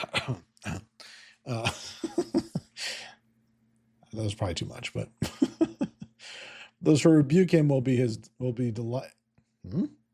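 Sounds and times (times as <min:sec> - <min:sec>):
speech: 0:00.0 - 0:00.5, 0:01.5 - 0:02.0, 0:04.2 - 0:05.4, 0:06.8 - 0:10.0
man clearing his throat: 0:00.0 - 0:02.3
man coughing: 0:00.0 - 0:02.8
laughter: 0:01.5 - 0:02.9, 0:05.2 - 0:06.2.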